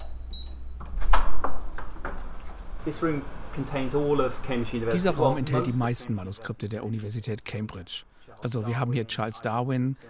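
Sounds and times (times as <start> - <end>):
door opening into a cool manuscript storage room in a university library: 0.0 - 3.0
speech: 2.8 - 10.0.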